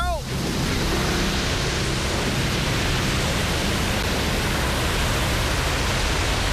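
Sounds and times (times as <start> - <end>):
loud steady roar of rushing water: 0.0 - 6.5.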